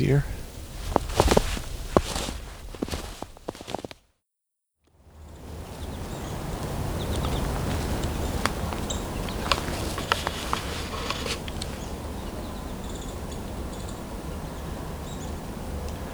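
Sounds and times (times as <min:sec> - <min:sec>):
speech: 0:00.0 - 0:00.3
American goldfinches calling: 0:00.0 - 0:03.8, 0:05.4 - 0:15.4
steady outdoor hiss: 0:00.0 - 0:03.9, 0:05.1 - 0:16.1.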